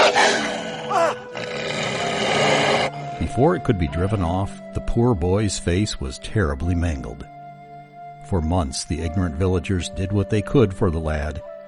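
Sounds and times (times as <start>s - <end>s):
wolf snarling and roaring in attack: 0.0s - 3.0s
speech: 3.4s - 7.3s, 8.3s - 11.5s.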